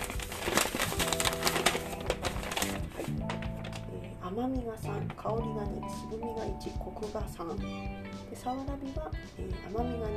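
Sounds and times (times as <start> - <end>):
paper tea package being torn open: 0.0 - 3.9
speech: 4.4 - 10.1.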